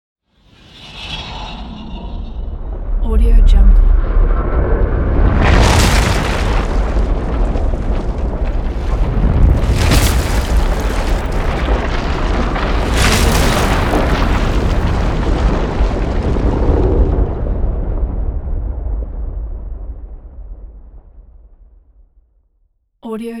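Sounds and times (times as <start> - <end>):
elemental earthquake rumble: 1.5 - 21.7.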